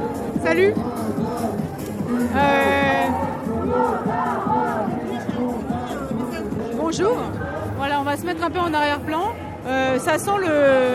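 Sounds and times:
overlapping voices of protest marchers: 0:00.0 - 0:07.8
marchers chanting: 0:00.0 - 0:08.0
speech: 0:00.4 - 0:01.0, 0:02.1 - 0:03.2, 0:06.9 - 0:10.9
marchers shouting: 0:02.1 - 0:05.4.

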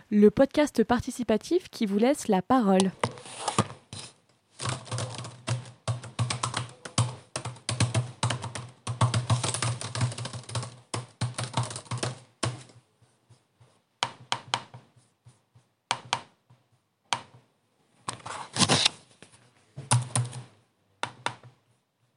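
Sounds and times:
speech: 0:00.1 - 0:03.5
typing on a computer keyboard: 0:04.6 - 0:12.8, 0:19.9 - 0:21.5.

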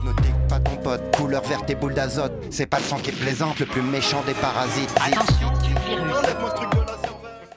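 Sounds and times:
dense electronic song with a singing voice: 0:00.0 - 0:07.5
speech: 0:00.9 - 0:06.7
booming video-game explosion effect: 0:02.8 - 0:05.4.

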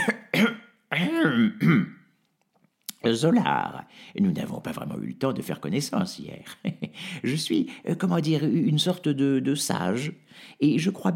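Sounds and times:
man clearing his throat: 0:00.0 - 0:02.1
speech: 0:03.0 - 0:11.1
laughter: 0:06.4 - 0:07.4.

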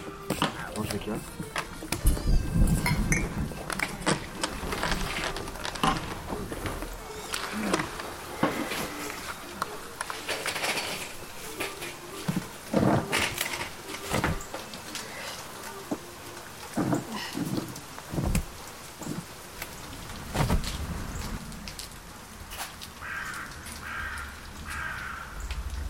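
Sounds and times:
steady rain: 0:00.0 - 0:25.8
speech: 0:00.8 - 0:01.6
crow cawing: 0:23.0 - 0:25.5.

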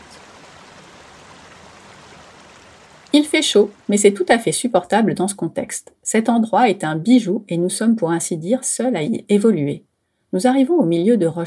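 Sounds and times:
small natural waterfall splashing and rushing: 0:00.0 - 0:04.4
speech: 0:03.1 - 0:11.4.

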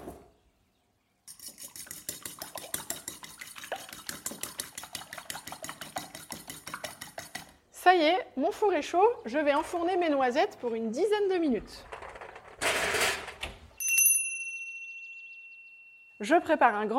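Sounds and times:
fork beating eggs in a bowl during baking prep: 0:01.3 - 0:07.6
speech: 0:07.9 - 0:11.9, 0:16.2 - 0:16.9.

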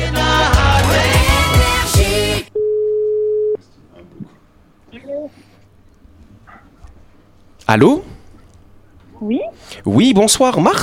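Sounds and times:
loud music: 0:00.0 - 0:02.5
telephone line tone while connecting a radio call: 0:02.6 - 0:03.6
speech: 0:07.7 - 0:08.1, 0:09.2 - 0:10.8.

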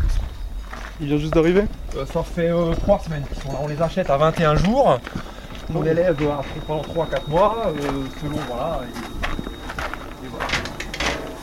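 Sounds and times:
speech: 0:01.0 - 0:09.2
heavy guillotine door on a livestock pen sliding open with metallic scrapes and bumps: 0:10.4 - 0:11.4.

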